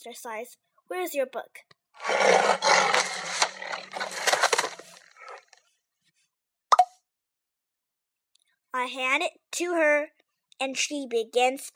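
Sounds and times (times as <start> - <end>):
speech: 0.0 - 4.7, 8.7 - 11.7
tiger roaring and growling: 2.0 - 5.6.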